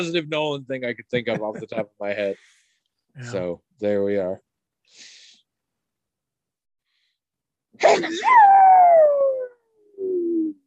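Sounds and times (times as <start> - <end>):
speech: 0.0 - 2.6, 3.2 - 5.2, 7.8 - 9.3
loud sneeze: 7.8 - 8.4.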